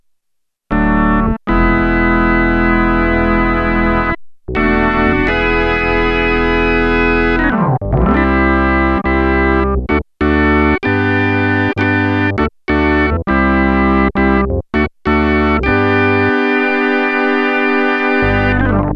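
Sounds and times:
Sequential Circuits Prophet-5 synthesizer rock organ factory patch: 0.7s - 18.9s.

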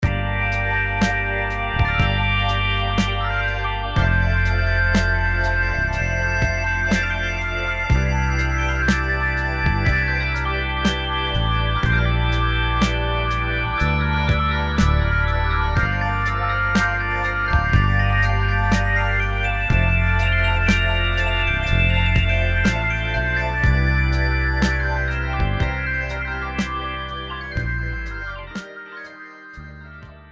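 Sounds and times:
Combinator psychedelic organ: 0.0s - 30.3s.

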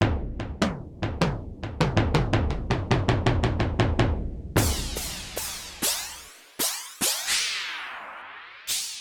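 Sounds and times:
bass drum: 0.0s - 5.9s
cymbals: 4.6s - 7.6s.

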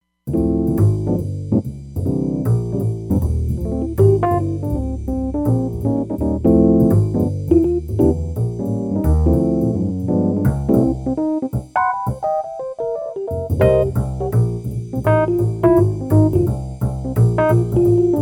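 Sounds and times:
Roland Fantom XR lounge drum kit: 0.3s - 18.1s.

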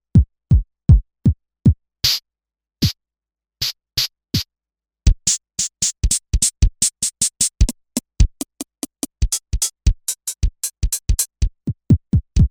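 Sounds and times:
techno drum kit: 0.2s - 2.2s, 5.1s - 12.4s.

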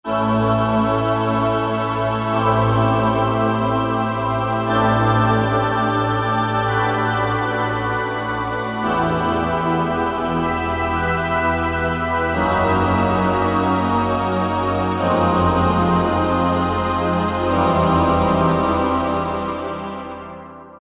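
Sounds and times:
slow orchestral pad: 0.1s - 19.9s.

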